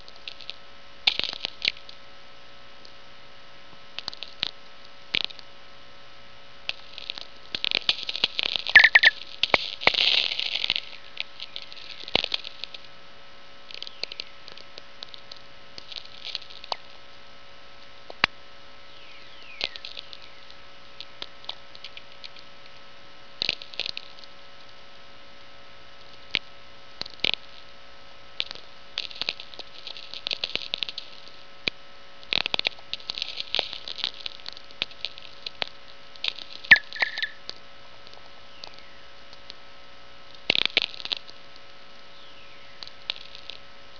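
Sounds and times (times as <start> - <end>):
VLF sferics at dawn: 0.0 - 43.9
VLF radio whistlers at dawn: 8.8 - 9.2, 36.7 - 37.4.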